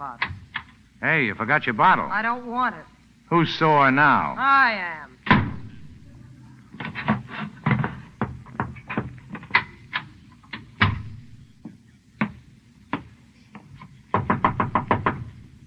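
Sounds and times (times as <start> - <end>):
speech: 0.0 - 0.4, 1.0 - 5.1
low rumble: 0.0 - 13.4
knocking on a door: 5.3 - 6.1, 6.8 - 9.8, 10.8 - 13.1, 14.1 - 15.6.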